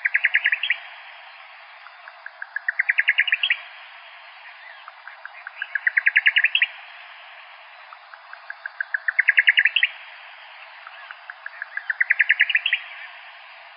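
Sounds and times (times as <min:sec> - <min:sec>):
Buff-collared nightjar song: 0:00.0 - 0:13.7
steady hiss: 0:00.0 - 0:13.7.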